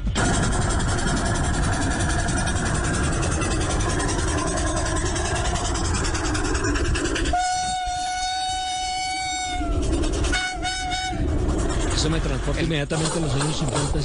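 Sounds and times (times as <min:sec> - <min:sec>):
steam locomotive chuffing and rumbling past: 0:00.1 - 0:14.0
steam locomotive horn blowing: 0:07.3 - 0:11.3
speech: 0:12.7 - 0:14.0.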